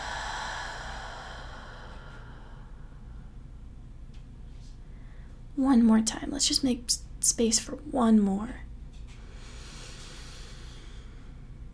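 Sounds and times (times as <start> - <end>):
slow exhale of breath during a guided breathing exercise: 0.0 - 3.3, 9.1 - 11.5
speech: 5.6 - 8.6.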